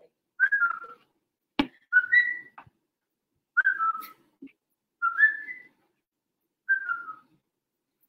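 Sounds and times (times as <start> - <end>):
person whistling two-note bird-like calls: 0.4 - 1.0, 1.9 - 2.6, 3.6 - 4.2, 5.0 - 5.8, 6.7 - 7.3.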